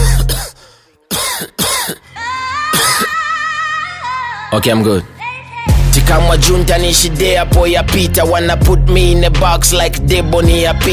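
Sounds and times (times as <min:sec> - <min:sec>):
harsh coughing: 0:00.0 - 0:03.2
speech: 0:04.5 - 0:05.2, 0:06.0 - 0:10.9.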